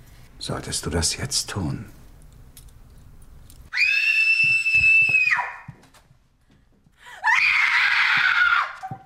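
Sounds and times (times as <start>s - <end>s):
speech: 0.4s - 2.0s
woman screaming high-pitched shrieks: 3.7s - 5.6s, 7.2s - 9.0s.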